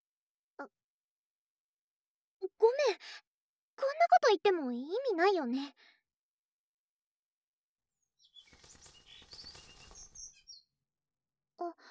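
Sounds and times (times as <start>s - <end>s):
speech: 2.6s - 6.0s, 11.6s - 11.8s
bird chirping: 8.2s - 10.7s
bird wings flapping: 8.4s - 10.6s.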